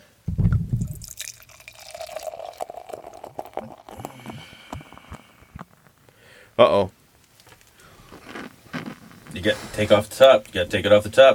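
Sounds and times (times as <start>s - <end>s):
beer fizzing: 0.9s - 4.6s
12% beer pouring from a freshly opened bottle into a glass: 0.9s - 5.7s
speech: 6.6s - 7.0s, 9.4s - 11.3s.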